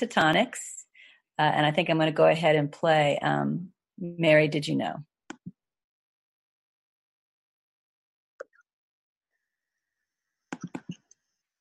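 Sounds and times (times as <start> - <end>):
speech: 0.0 - 0.8, 1.4 - 5.1
keyboard typing clicks: 10.5 - 11.2.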